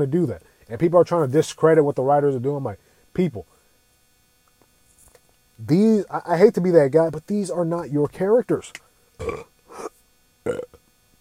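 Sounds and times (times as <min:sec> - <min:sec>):
speech: 0:00.0 - 0:03.5, 0:05.6 - 0:10.8
throaty burps: 0:09.2 - 0:10.9.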